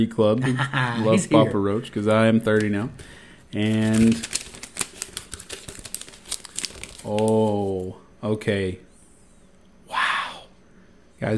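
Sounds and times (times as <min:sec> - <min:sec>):
speech: 0:00.0 - 0:04.4, 0:07.0 - 0:08.9, 0:11.2 - 0:11.3
crisp paper crinkling and tearing as a birthday gift card and package are opened: 0:03.6 - 0:07.6.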